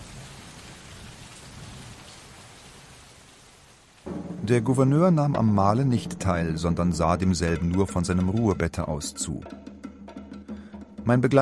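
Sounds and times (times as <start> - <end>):
cold rain falling: 0.0 - 5.4
speech: 4.4 - 9.7, 11.1 - 11.3.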